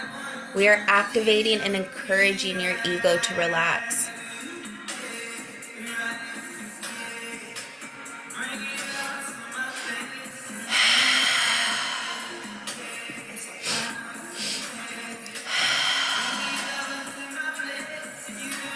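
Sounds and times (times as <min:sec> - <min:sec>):
speech: 0:00.5 - 0:04.1
exaggerated deep breathing as a breathwork exercise: 0:08.8 - 0:17.9.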